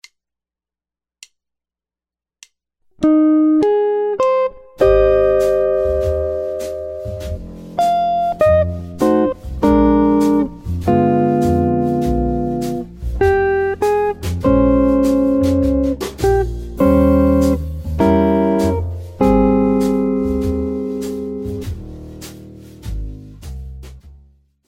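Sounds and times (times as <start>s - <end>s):
guitar chord melody: 3.0s - 22.6s.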